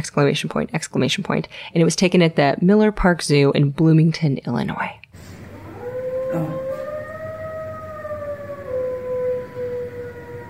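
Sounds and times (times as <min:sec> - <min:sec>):
speech: 0:00.0 - 0:05.4, 0:06.3 - 0:06.6
fire truck siren wailing: 0:05.4 - 0:10.4.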